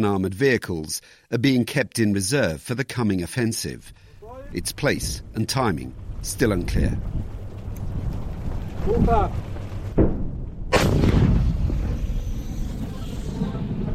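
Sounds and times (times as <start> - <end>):
speech: 0.0 - 7.3, 8.8 - 9.5
British light artillery gun firing a round: 9.9 - 13.8.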